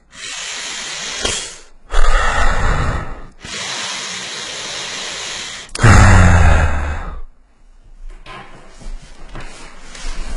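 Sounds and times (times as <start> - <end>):
heavy breathing blown into a microphone: 0.1 - 7.3.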